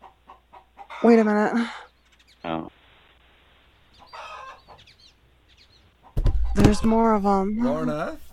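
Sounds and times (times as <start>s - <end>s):
bird clucking: 0.0s - 1.2s, 3.9s - 7.0s
speech: 1.0s - 1.9s, 6.6s - 8.3s.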